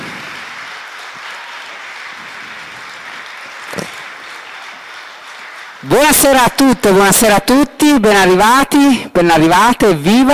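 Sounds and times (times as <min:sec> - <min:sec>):
sharp clap: 0:00.0 - 0:07.0
audience applause from a crowd: 0:00.0 - 0:07.3
speech: 0:05.8 - 0:10.3.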